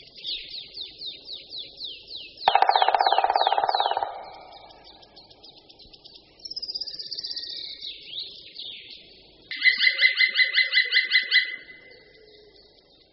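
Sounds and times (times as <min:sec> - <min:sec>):
male black woodpecker kli-kli call: 0:00.4 - 0:07.8, 0:09.5 - 0:12.6.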